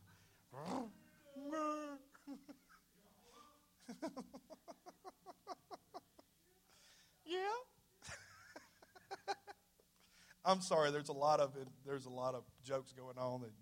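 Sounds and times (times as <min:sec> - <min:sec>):
person imitating a lion's roar: 0:00.5 - 0:02.1
speech: 0:10.5 - 0:13.6.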